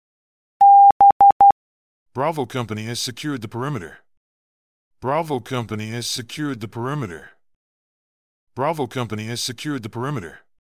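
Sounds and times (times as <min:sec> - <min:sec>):
Morse code beeps for the letter B: 0:00.6 - 0:01.5
speech: 0:02.2 - 0:04.0, 0:05.0 - 0:07.3, 0:08.6 - 0:10.4.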